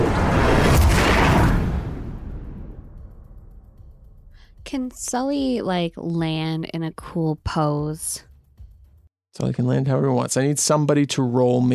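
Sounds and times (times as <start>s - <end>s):
loud crashing explosion sound effect with rumbling tail: 0.0s - 3.7s
speech: 4.7s - 8.3s, 9.4s - 11.7s.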